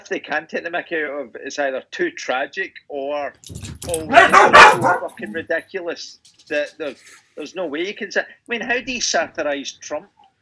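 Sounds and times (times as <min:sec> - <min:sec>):
speech: 0:00.1 - 0:10.2
dogs barking excitedly as someone comes home: 0:03.5 - 0:05.6.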